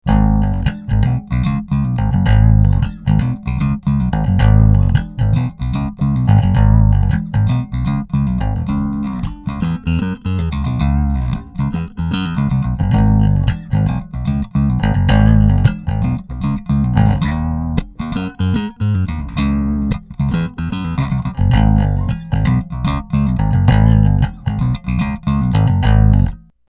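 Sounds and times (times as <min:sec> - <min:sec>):
musical riff: 0:00.1 - 0:26.4.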